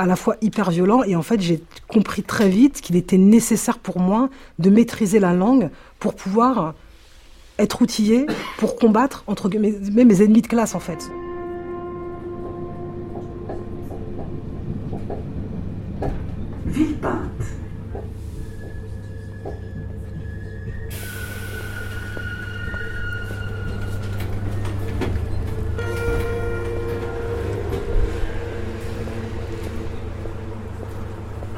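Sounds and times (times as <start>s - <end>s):
speech: 0.0s - 6.8s, 7.6s - 11.2s
train rumbling at a suburban railway station: 9.3s - 31.5s.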